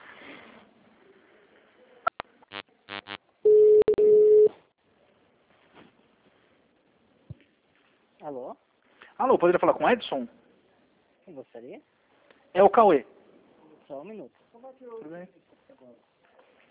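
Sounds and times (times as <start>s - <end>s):
quick electronic tone bursts of an automated phone menu: 2.5s - 3.6s
speech: 8.3s - 10.4s, 11.4s - 13.2s, 13.9s - 16.1s.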